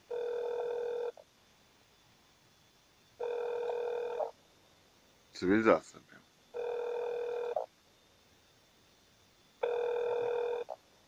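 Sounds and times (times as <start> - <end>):
newsroom telephone ringing with electronic ring bursts: 0.1 - 1.1, 3.2 - 4.3, 6.6 - 7.6, 9.6 - 10.7
speech: 5.4 - 6.2.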